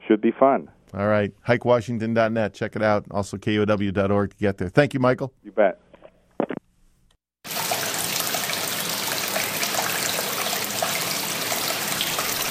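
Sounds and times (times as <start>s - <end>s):
speech: 0.1s - 5.8s
hot spring water flowing from its source into a stone cave near North Bend: 7.5s - 12.4s.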